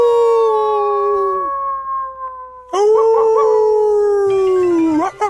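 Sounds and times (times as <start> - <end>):
wolves howling: 0.0 - 5.1.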